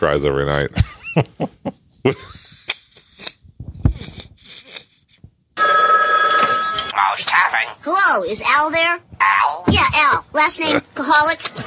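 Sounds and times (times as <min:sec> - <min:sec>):
speech: 0:00.0 - 0:02.5, 0:07.2 - 0:11.6
telephone bell ringing: 0:05.6 - 0:07.0.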